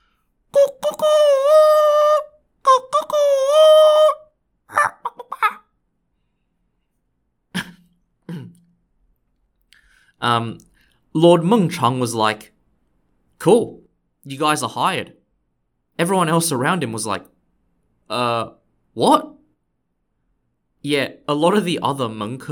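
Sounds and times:
short vocal noises: 0.5 - 5.7, 7.6 - 8.8
human voice imitating a rooster crowing: 0.6 - 5.6
speech: 10.2 - 12.5, 13.4 - 15.2, 16.0 - 17.3, 18.1 - 19.3, 20.8 - 22.5.

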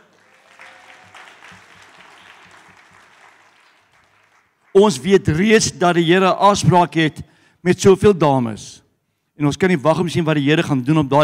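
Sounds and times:
audience clapping: 0.0 - 5.3
speech: 4.8 - 8.8, 9.4 - 11.2.

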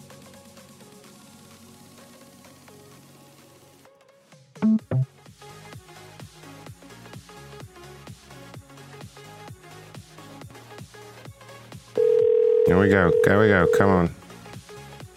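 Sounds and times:
telephone dialing beeps: 12.0 - 14.0
outgoing telephone call ringback tone: 12.0 - 14.1
speech: 12.8 - 14.2.

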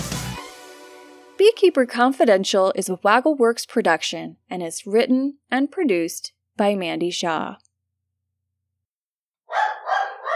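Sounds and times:
speech: 1.4 - 7.6
dog barking: 9.5 - 10.3.

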